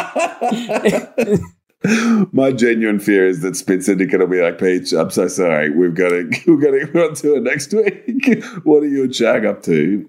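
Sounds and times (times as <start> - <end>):
laughter: 0.0 - 1.5
speech: 0.1 - 10.0
harsh raspy coughs: 0.6 - 2.1.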